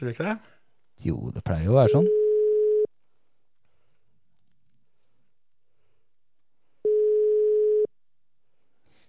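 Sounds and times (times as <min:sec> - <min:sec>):
speech: 0:00.0 - 0:02.2
outgoing phone call ringing tone: 0:01.8 - 0:02.9, 0:06.9 - 0:07.9.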